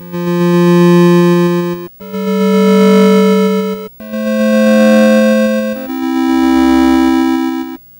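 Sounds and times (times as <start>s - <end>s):
Atari 2600 8-bit chiptune synth harmony: 0.0s - 7.8s.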